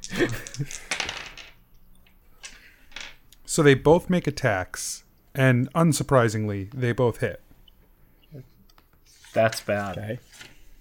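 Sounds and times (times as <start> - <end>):
dice rolling on a hard tabletop: 0.0 - 3.2
speech: 0.2 - 0.9, 3.6 - 7.4, 8.3 - 8.5, 9.3 - 10.5.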